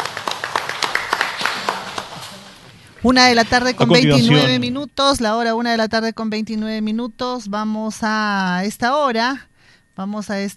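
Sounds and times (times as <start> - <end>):
small group applauding at a press conference in Otuzco Peru: 0.0 - 2.8
speech: 3.0 - 10.5.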